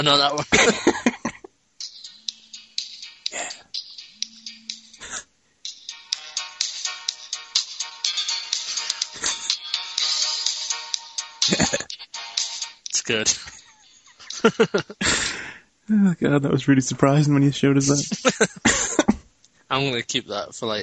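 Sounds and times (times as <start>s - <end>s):
speech: 0.0s - 1.1s, 13.1s - 13.6s, 14.4s - 18.8s, 19.7s - 20.8s
laughter: 0.5s - 1.4s, 11.5s - 11.9s, 13.2s - 15.4s, 17.9s - 19.2s
tinny phone ringtone playing a movie theme tune through a small speaker: 1.8s - 12.8s.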